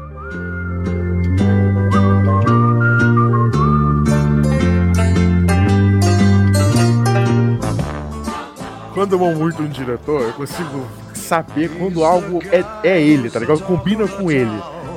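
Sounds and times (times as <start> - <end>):
whistled melody: 0.0 - 7.5
Western film style instrumental backing with pulsing low chords: 0.0 - 14.9
speech: 9.0 - 14.7.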